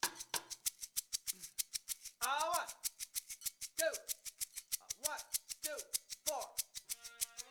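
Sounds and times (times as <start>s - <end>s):
shaker loop: 0.0s - 7.4s.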